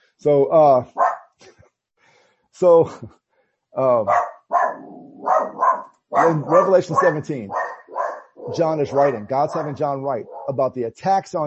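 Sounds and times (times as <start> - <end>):
speech: 0.2 - 1.0, 2.6 - 4.3, 5.2 - 7.6, 8.5 - 11.4
dog barking: 1.0 - 1.3, 4.1 - 10.6.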